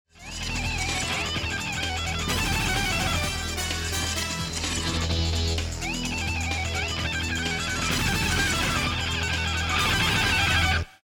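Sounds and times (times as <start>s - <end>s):
bomb timer countdown: 0.2s - 10.8s.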